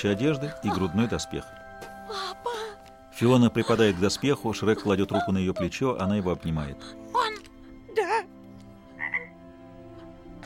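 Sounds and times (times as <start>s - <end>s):
speech: 0.0s - 1.6s, 3.2s - 7.1s
toad croaking: 8.9s - 9.5s.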